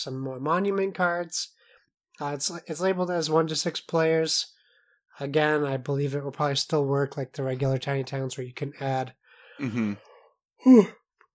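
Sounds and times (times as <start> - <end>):
speech: 0.0 - 1.6, 2.2 - 4.6, 5.2 - 11.0
person yawning: 9.6 - 11.0.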